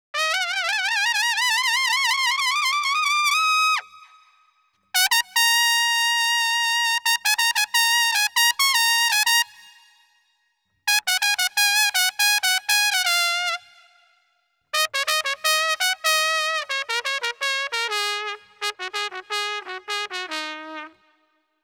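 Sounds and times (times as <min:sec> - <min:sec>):
jazz trumpet in E-flat minor: 0:00.2 - 0:04.2, 0:05.0 - 0:09.9, 0:10.9 - 0:14.0, 0:14.8 - 0:21.3.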